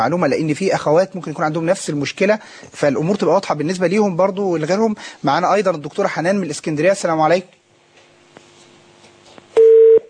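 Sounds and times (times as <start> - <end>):
speech: 0.0 - 7.6
telephone tone after a dropped call: 9.6 - 10.0.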